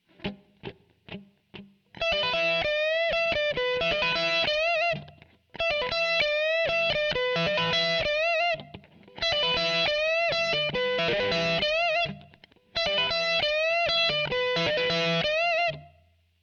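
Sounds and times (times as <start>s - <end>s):
guitar riff in E minor: 0.0s - 16.1s.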